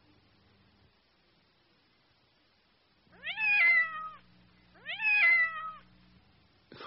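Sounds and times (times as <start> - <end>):
faint low hum: 0.0 - 6.8
cat meowing: 3.1 - 5.9.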